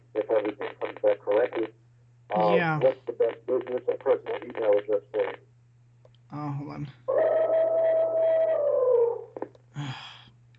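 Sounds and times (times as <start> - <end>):
speech: 0.2 - 3.0, 3.6 - 5.5, 6.3 - 7.3
elephant trumpeting in an office: 7.1 - 9.3.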